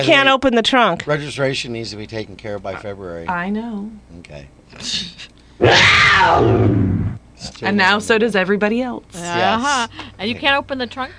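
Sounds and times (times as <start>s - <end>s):
speech: 0.0s - 11.1s
coyote howl: 5.6s - 6.8s.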